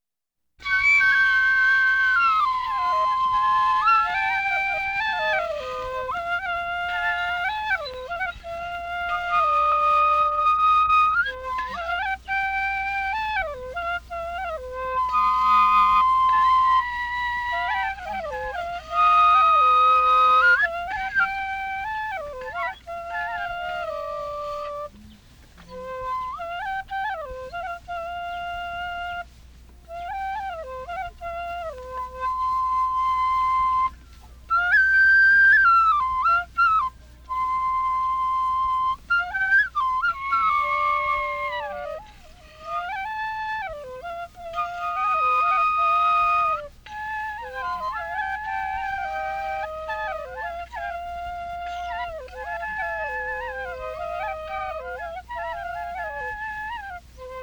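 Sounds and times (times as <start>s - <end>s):
flute duet: 0.6s - 57.4s.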